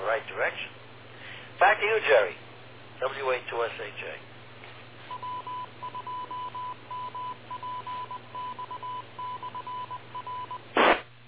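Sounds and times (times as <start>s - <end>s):
speech: 0.2s - 0.8s, 1.6s - 2.4s, 3.0s - 4.3s
radio repeater station ID beeping in Morse code: 5.1s - 10.6s
brief burst of radio static: 10.7s - 11.1s.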